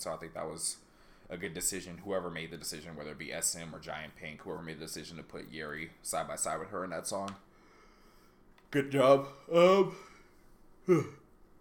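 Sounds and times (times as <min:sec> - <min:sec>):
speech: 0:00.0 - 0:07.5, 0:08.7 - 0:10.1, 0:10.9 - 0:11.2
person yawning: 0:10.8 - 0:11.2.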